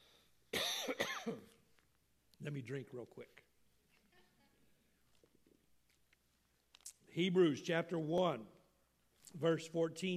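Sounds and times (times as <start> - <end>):
harsh cough: 0.5 - 1.6
rough throat-clearing rasps: 0.6 - 1.6
speech: 0.9 - 1.5, 2.4 - 3.5, 7.2 - 8.6, 9.3 - 10.1.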